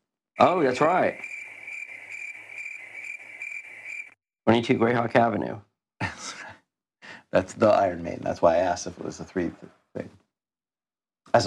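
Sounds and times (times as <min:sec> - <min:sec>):
speech: 0:00.4 - 0:01.3, 0:04.5 - 0:06.4, 0:07.3 - 0:10.2
crickets chirping in a dense continuous trill: 0:00.4 - 0:04.2.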